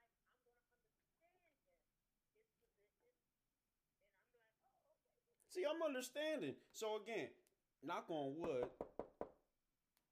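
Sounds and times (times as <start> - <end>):
speech: 4.0 - 8.9
sharp knocks on wood: 8.4 - 9.4.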